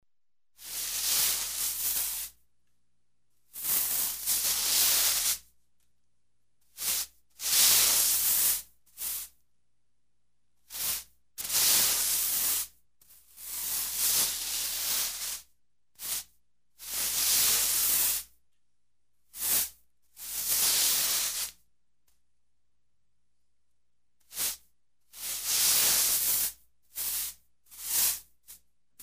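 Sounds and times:
drawn-out broom sweeping: 0.6 - 2.4, 3.6 - 5.4, 6.8 - 9.3, 10.7 - 12.3, 13.4 - 18.3, 20.4 - 21.6, 24.3 - 24.6, 25.3 - 29.0.

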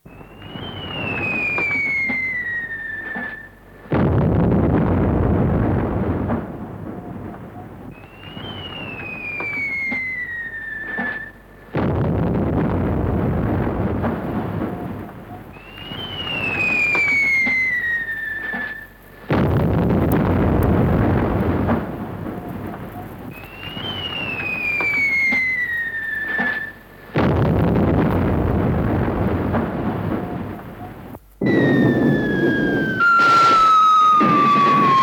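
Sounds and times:
whistling of bombs: 0.0 - 3.6, 7.6 - 11.4, 15.3 - 19.0, 23.0 - 26.8, 30.2 - 35.0
bomb explosions: 0.0 - 35.0.

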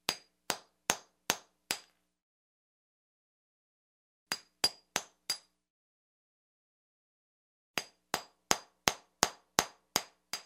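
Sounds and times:
hammer striking chisel: 0.0 - 2.0, 4.3 - 5.6, 7.8 - 10.4.

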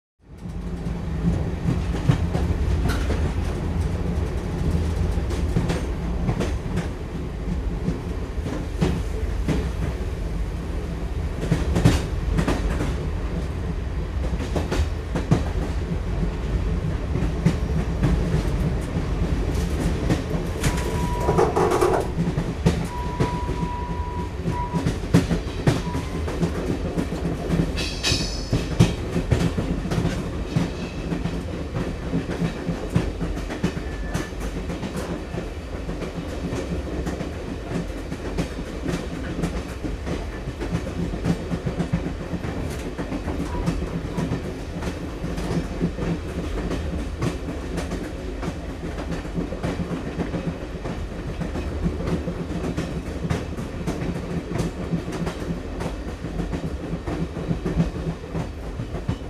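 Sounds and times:
train wheels: 0.3 - 59.2.

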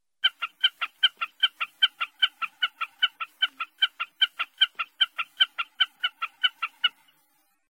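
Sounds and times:
snipe morning calls: 0.2 - 7.2.

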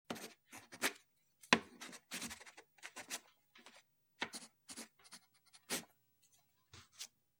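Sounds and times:
pencil writing: 0.1 - 5.9.

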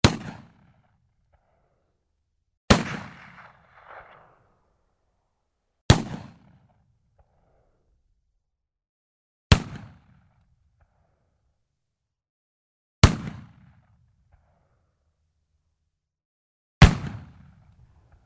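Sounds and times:
shotgun shots: 0.0 - 0.8, 2.7 - 4.9, 5.9 - 6.7, 16.8 - 17.6.

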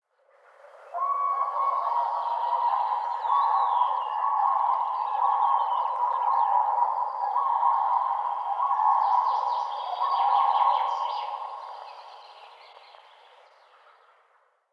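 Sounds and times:
distant voices of a pair of cranes: 0.7 - 12.3.

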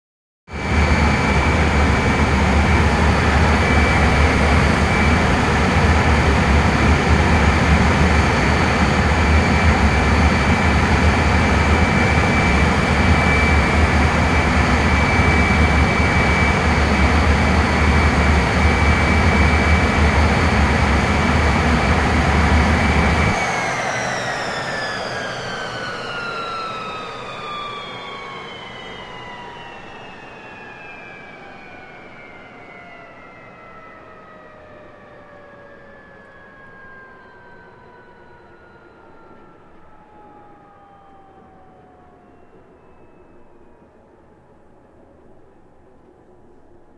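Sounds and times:
airplane turbine engine: 0.5 - 46.9.

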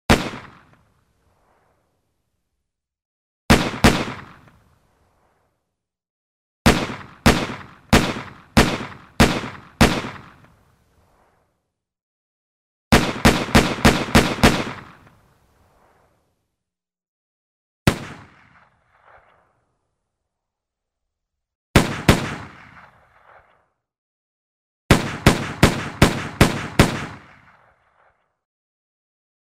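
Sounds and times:
slow pistol shots: 0.1 - 1.9, 3.5 - 5.6, 6.6 - 11.5, 12.9 - 16.2, 17.9 - 19.8, 21.8 - 23.8, 24.9 - 28.4.

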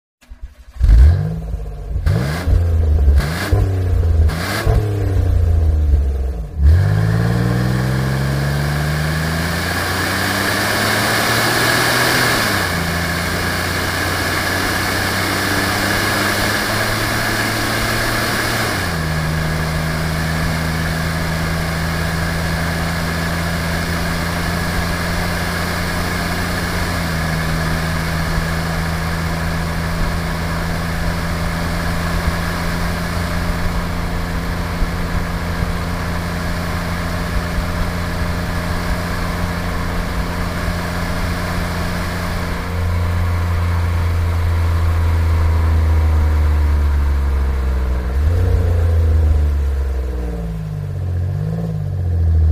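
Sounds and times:
car engine throttle blip: 0.2 - 52.4.

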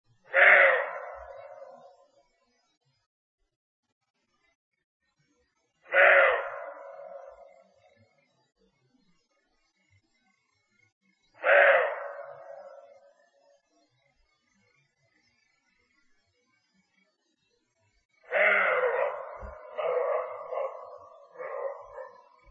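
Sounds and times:
roe deer call: 0.3 - 1.9, 5.9 - 7.6, 11.4 - 13.1, 18.3 - 22.4.

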